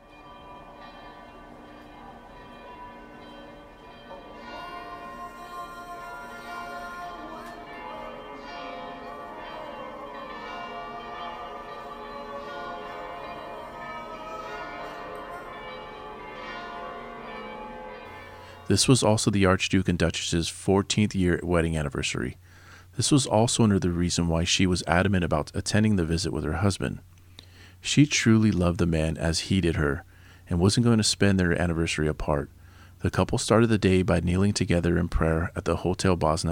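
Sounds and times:
church bells tolling over Sarajevo at sunrise: 0:00.0 - 0:19.2
speech: 0:18.7 - 0:27.1, 0:27.8 - 0:36.5.

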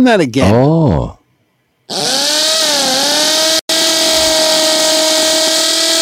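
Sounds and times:
speech: 0:00.0 - 0:01.2, 0:01.9 - 0:02.2
old electric drill running with a motor whine: 0:01.9 - 0:06.0.

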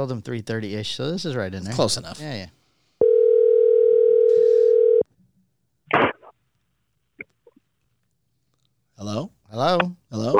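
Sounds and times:
speech: 0:00.0 - 0:02.6, 0:09.0 - 0:10.3
phone dial tone: 0:03.0 - 0:05.0.

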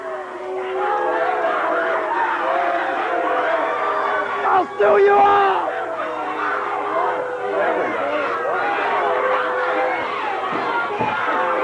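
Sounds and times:
large crowd booing a man: 0:00.0 - 0:11.6
speech: 0:04.6 - 0:05.6.

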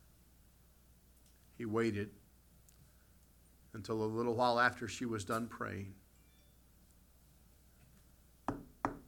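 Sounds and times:
speech: 0:01.6 - 0:02.2, 0:03.7 - 0:06.0
man knocking firmly on a wooden door: 0:08.5 - 0:09.0.

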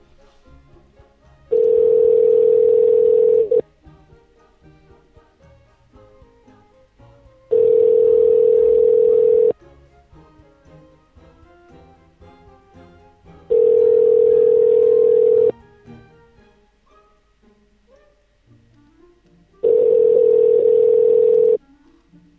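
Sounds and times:
telephone ringback tone of an unanswered call to a business: 0:01.5 - 0:03.6, 0:07.5 - 0:09.6, 0:13.5 - 0:15.5, 0:19.6 - 0:21.6.

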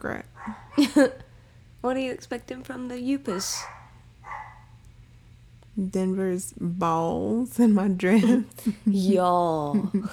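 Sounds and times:
speech: 0:00.0 - 0:01.2, 0:01.8 - 0:03.8, 0:05.8 - 0:10.1
low steady hum: 0:00.0 - 0:10.1
excited dog barking: 0:00.4 - 0:01.2, 0:03.3 - 0:04.7.

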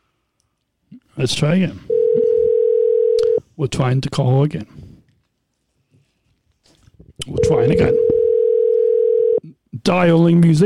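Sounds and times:
speech: 0:01.2 - 0:01.9, 0:03.6 - 0:04.8, 0:07.3 - 0:08.1, 0:09.8 - 0:10.6
telephone dial tone played as a sound effect: 0:01.9 - 0:03.4, 0:07.3 - 0:09.4.

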